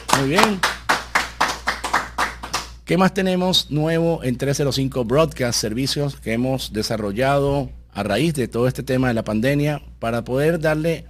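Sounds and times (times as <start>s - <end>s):
hands clapping in a steady rhythm: 0.0s - 2.8s
low constant hum: 0.0s - 11.0s
speech: 0.2s - 0.7s, 2.9s - 11.0s.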